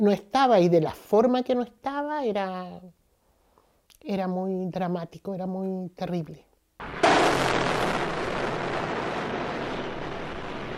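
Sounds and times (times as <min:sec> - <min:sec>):
speech: 0:00.0 - 0:03.0, 0:04.0 - 0:07.5
loud blast from a warplane attack: 0:06.8 - 0:10.7.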